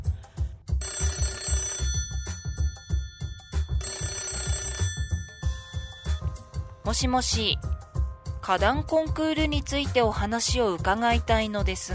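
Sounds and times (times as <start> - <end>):
telephone ringing for a call to a city hall: 0.8 - 6.4
steady thumping music beat: 1.8 - 11.9
speech: 6.9 - 7.7, 8.5 - 11.9.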